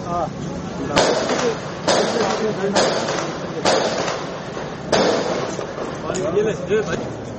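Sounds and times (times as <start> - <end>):
voices and commotion: 0.0 - 7.3
gunshot bangs: 1.0 - 6.0.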